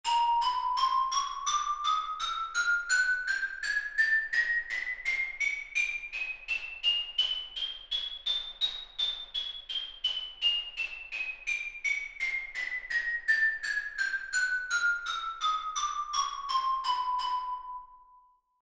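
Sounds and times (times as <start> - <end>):
mallets playing a chromatic scale: 0.1 - 18.2.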